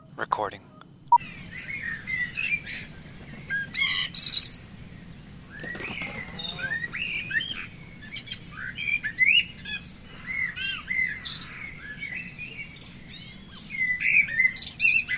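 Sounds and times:
low steady rumble: 0.0s - 14.9s
dawn chorus of many songbirds chirping, trilling and whistling: 0.0s - 15.1s
speech: 0.2s - 1.3s
wings fluttering: 1.3s - 7.7s.

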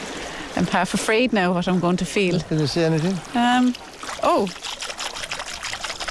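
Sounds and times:
speech: 0.6s - 4.8s
fingers splashing and swishing in sea water beside a kayak: 3.6s - 6.0s.

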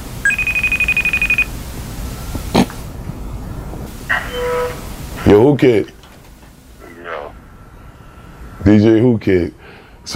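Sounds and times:
phone ringing with rapid electronic trill: 0.2s - 1.5s
short beeping tone: 0.2s - 1.5s, 4.1s - 4.8s
speech: 5.3s - 6.0s, 8.6s - 10.1s.

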